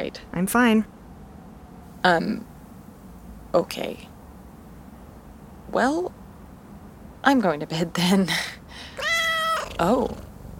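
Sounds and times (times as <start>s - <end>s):
speech: 0.0s - 1.0s, 2.0s - 2.5s, 3.5s - 4.1s, 5.7s - 6.2s, 7.2s - 8.9s, 9.8s - 10.2s
cat meowing: 9.0s - 9.8s.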